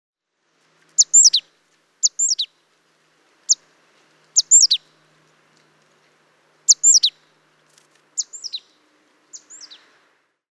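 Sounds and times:
great tit Parus major calls: 0:01.0 - 0:02.7, 0:04.3 - 0:05.1, 0:06.6 - 0:10.0.

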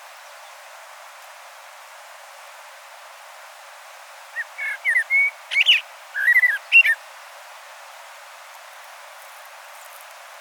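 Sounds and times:
Turdus merula common blackbird singing: 0:04.4 - 0:07.0.

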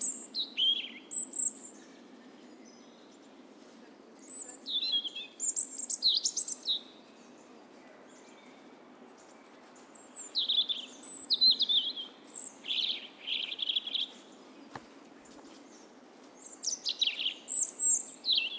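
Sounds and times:
European robin Erithacus rubecula singing: 0:00.0 - 0:18.5.

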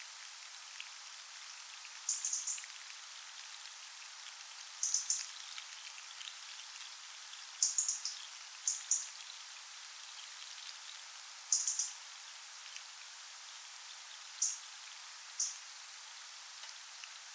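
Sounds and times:
constant high-pitched hiss: 0:00.0 - 0:17.3
Erithacus rubecula European robin ticking calls: 0:02.0 - 0:02.6, 0:04.8 - 0:05.4, 0:07.6 - 0:09.2, 0:11.5 - 0:12.0, 0:14.4 - 0:14.6, 0:15.4 - 0:15.6.

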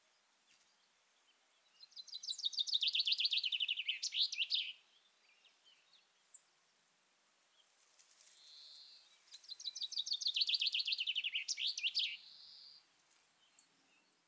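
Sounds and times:
common chaffinch Fringilla coelebs singing descending phrase with flourish: 0:01.8 - 0:04.8, 0:08.3 - 0:12.8.

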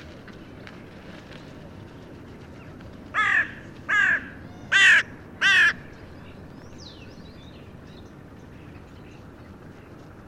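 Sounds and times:
carrion crow Corvus corone cawing harshly: 0:03.1 - 0:05.8.

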